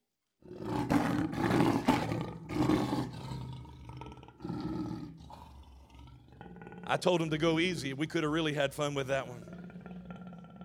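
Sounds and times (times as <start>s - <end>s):
lion roaring: 0.4s - 7.2s, 9.3s - 10.6s
speech: 6.9s - 9.5s.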